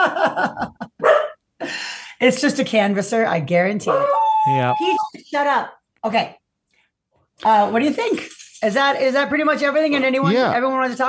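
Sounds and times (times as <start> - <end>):
dog barking at doorbell: 1.0 - 1.4
speech: 2.2 - 6.4, 7.4 - 11.0.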